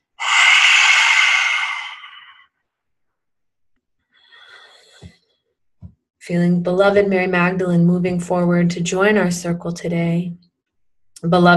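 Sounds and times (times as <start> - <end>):
deep breath exhaled during a guided breathing meditation: 0.0 - 2.6
speech: 6.3 - 10.4, 11.2 - 11.5.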